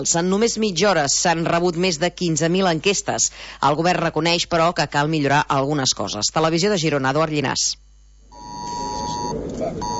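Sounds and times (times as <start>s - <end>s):
speech: 0.0s - 7.8s
mobile phone emergency alert tone from a civil protection test: 8.3s - 9.9s.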